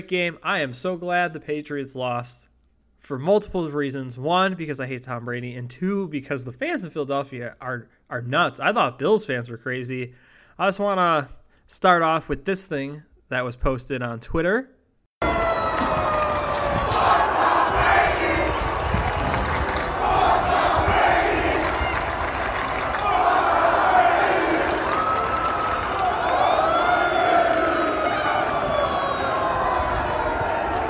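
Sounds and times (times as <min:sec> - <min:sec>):
speech: 0:00.0 - 0:14.8
large outdoor crowd chanting and yelling while walking down a street: 0:15.2 - 0:30.8.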